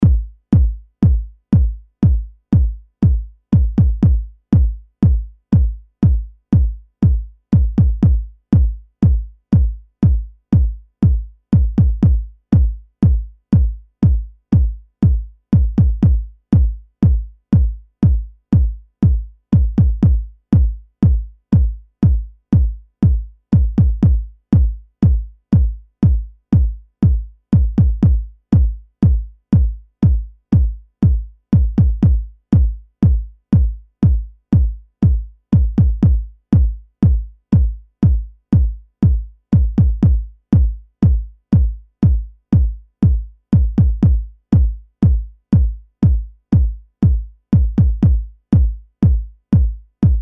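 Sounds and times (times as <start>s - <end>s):
simple drum beat at 60 BPM: 0.0s - 50.1s.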